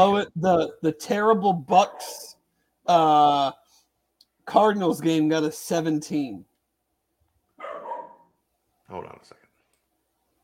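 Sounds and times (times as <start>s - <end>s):
speech: 0.0s - 3.6s, 4.5s - 6.5s, 8.9s - 9.4s
dog barking: 1.9s - 2.2s, 7.6s - 8.3s.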